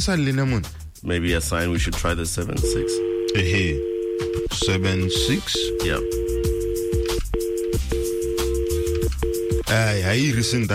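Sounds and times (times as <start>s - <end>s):
speech: 0.0s - 6.3s, 9.7s - 10.7s
loud telephone dialing tone: 2.6s - 9.7s.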